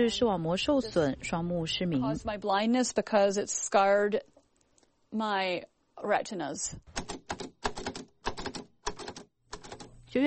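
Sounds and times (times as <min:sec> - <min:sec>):
speech: 0:00.0 - 0:04.3, 0:05.1 - 0:07.0
braille typewriter keys clacking in a college classroom: 0:06.9 - 0:09.9.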